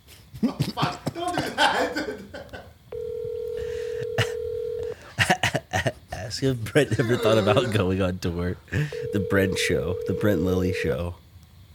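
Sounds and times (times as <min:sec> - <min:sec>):
laughter: 0:00.4 - 0:02.8, 0:05.0 - 0:08.0, 0:08.7 - 0:09.0
steady electronic telephone tone: 0:02.9 - 0:05.0, 0:08.9 - 0:11.0
speech: 0:06.4 - 0:11.2.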